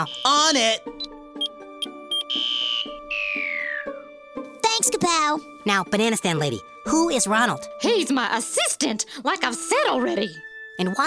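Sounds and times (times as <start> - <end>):
electronic banana alarm bleeping and wailing: 0.0 - 0.4, 1.4 - 3.5
speech: 0.0 - 1.0, 4.9 - 11.0.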